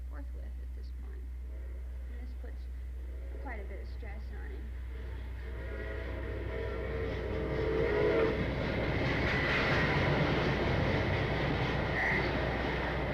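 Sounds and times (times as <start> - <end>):
passing train rumbling: 0.0 - 13.1
train whistle: 3.0 - 13.1
speech: 3.4 - 6.0.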